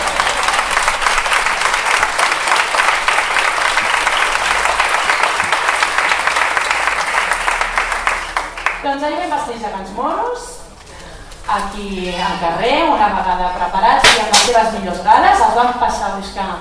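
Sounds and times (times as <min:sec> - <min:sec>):
crowd applauding: 0:00.0 - 0:08.9
speech: 0:09.0 - 0:10.5, 0:11.5 - 0:16.5.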